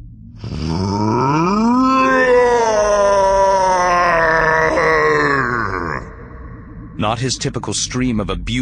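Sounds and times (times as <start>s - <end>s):
creature's anguished bellow of grief: 0.4s - 6.7s
speech: 7.0s - 8.5s.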